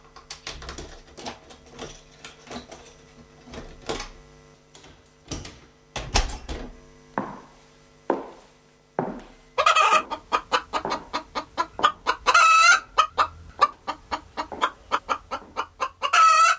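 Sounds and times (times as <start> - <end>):
rooster and hen clucking: 9.6 - 16.5.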